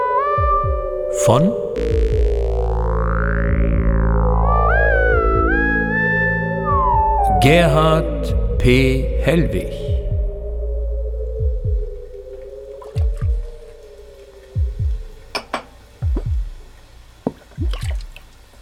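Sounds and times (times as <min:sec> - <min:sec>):
steady wavering hum: 0:00.0 - 0:16.7
speech: 0:01.2 - 0:02.2, 0:07.4 - 0:09.9
rain pouring outside: 0:12.3 - 0:18.6
glasses clinking: 0:15.4 - 0:15.7.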